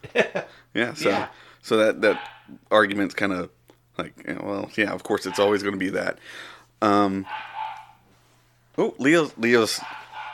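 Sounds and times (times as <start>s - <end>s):
speech: 0.1s - 7.5s, 8.8s - 10.0s
dog barking: 2.1s - 2.5s, 5.3s - 5.6s, 7.2s - 8.0s, 9.7s - 10.3s.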